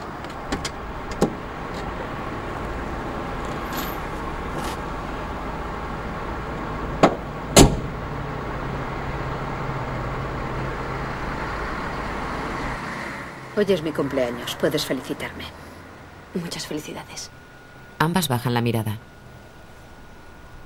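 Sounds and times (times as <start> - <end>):
steady low car hum: 0.0 - 18.0
louder sharp clunks: 7.0 - 8.0
speech: 13.6 - 15.7, 16.3 - 17.4, 18.0 - 19.1.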